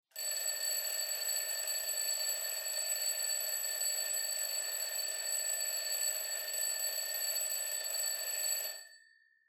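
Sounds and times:
clock alarm: 0.2 - 9.1.

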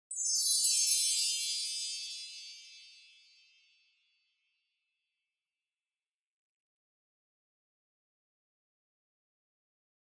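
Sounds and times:
high wind chimes with reverb: 0.1 - 3.9.

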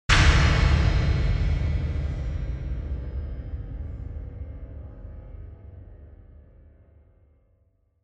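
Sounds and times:
low impact: 0.1 - 6.4.

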